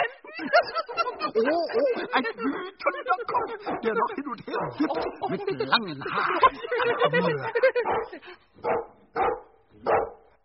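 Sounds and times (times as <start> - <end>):
laughter: 0.0 - 8.4
speech: 0.4 - 9.3
dog barking: 3.4 - 5.3, 6.8 - 10.3.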